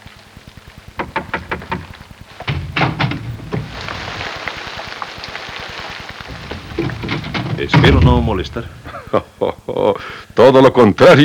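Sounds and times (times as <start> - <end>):
heavy rain hissing: 0.0 - 10.6
latch being worked: 1.0 - 4.2, 6.3 - 9.0
front door swinging open: 1.0 - 4.9, 6.3 - 9.1
speech: 7.7 - 11.2.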